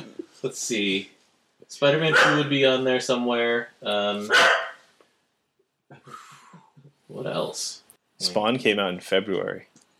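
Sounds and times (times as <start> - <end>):
speech: 0.4 - 4.6, 7.1 - 9.8
dog barking: 2.1 - 2.5, 4.3 - 4.9.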